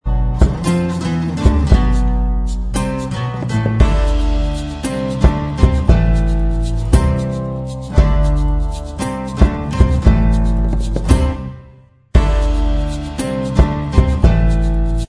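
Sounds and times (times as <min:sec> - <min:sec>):
acoustic instrumental backing track: 0:00.0 - 0:15.0.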